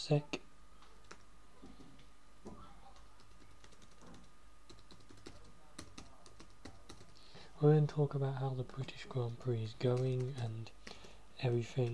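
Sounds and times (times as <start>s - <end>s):
speech: 0.0s - 0.4s, 7.6s - 10.8s, 11.4s - 11.9s
low steady hum: 0.0s - 11.9s
typing on a computer keyboard: 1.0s - 1.2s, 2.9s - 7.2s, 9.7s - 11.9s.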